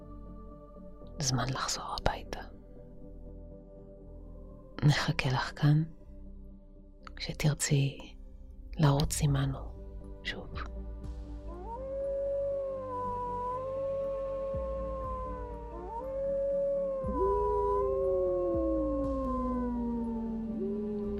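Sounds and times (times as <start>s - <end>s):
speech: 1.2s - 2.6s, 4.8s - 6.0s, 7.2s - 8.1s, 8.8s - 10.7s
several wolves howling together: 11.5s - 21.1s.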